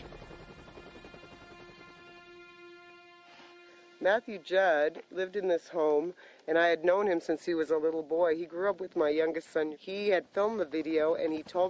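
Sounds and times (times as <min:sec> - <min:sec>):
Black Hawk helicopter rotor blades thumping: 0:00.0 - 0:01.5
Black Hawk helicopter turbine whine: 0:00.0 - 0:04.0
speech: 0:04.0 - 0:11.6.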